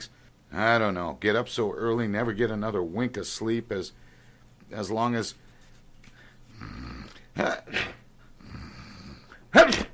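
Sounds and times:
speech: 0:00.0 - 0:04.0, 0:04.7 - 0:05.4, 0:07.4 - 0:08.0
man sneezing: 0:07.4 - 0:08.1, 0:09.3 - 0:09.9.

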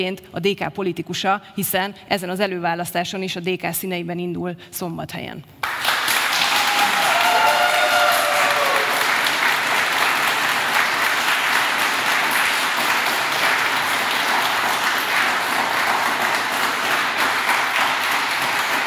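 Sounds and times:
speech: 0:00.0 - 0:05.7
audience clapping at a forum of parliamentary candidates: 0:05.6 - 0:18.8.

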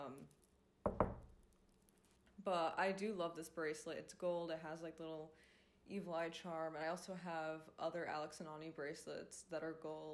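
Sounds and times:
speech: 0:00.1 - 0:00.4, 0:02.4 - 0:10.1
knuckles knocking on wood: 0:00.9 - 0:01.3.

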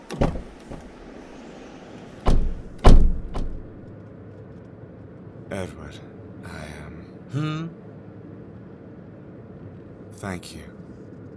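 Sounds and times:
car doors opening and closing: 0:00.0 - 0:03.9
speech: 0:05.5 - 0:06.6, 0:07.3 - 0:07.8, 0:10.2 - 0:10.8.

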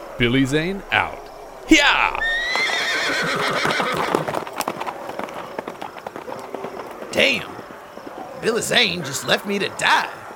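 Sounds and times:
speech: 0:00.2 - 0:04.3, 0:07.2 - 0:07.5, 0:08.4 - 0:10.2
horse hooves clip-clopping in a gallop: 0:01.7 - 0:10.3
horse whinnying: 0:01.8 - 0:09.6.

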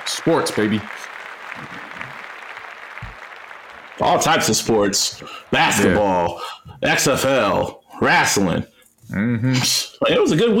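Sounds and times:
applause: 0:00.0 - 0:06.0
speech: 0:00.1 - 0:01.9, 0:04.0 - 0:10.5.

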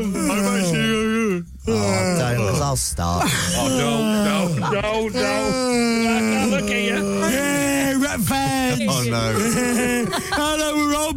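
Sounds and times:
person imitating a Wookiee growl: 0:00.0 - 0:02.6, 0:03.2 - 0:10.2
speech: 0:02.7 - 0:11.1
laughter: 0:03.1 - 0:11.1.

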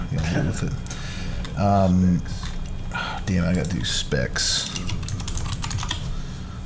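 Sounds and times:
speech: 0:00.4 - 0:01.0, 0:01.6 - 0:02.5, 0:03.2 - 0:04.9
typing on a loud mechanical gaming keyboard: 0:04.8 - 0:06.0.

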